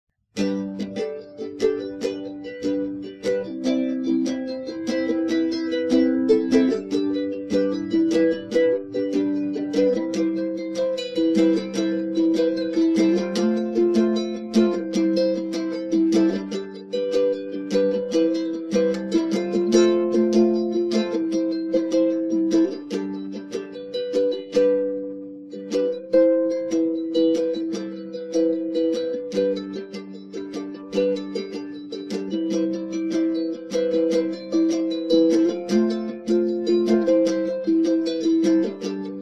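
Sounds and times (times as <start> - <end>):
rambling ukulele playing: 0.4 - 39.2.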